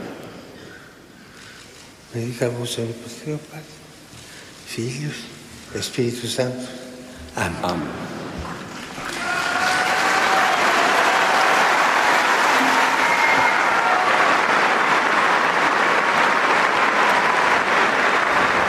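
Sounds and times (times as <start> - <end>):
speech: 2.1 - 3.8, 4.7 - 8.2
large crowd applauding after a papal blessing: 8.9 - 18.6.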